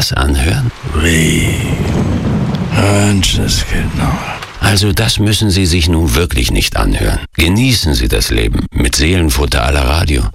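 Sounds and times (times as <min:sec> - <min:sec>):
steady dense rain hissing: 0:00.0 - 0:06.0
speech: 0:00.0 - 0:10.3.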